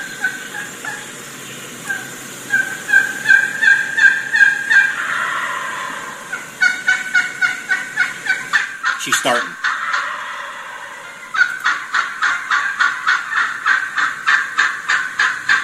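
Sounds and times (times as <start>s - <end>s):
faint outdoor hiss: 0.0s - 15.6s
wild turkey hen yelping to gobblers: 1.9s - 15.6s
speech: 9.0s - 9.6s.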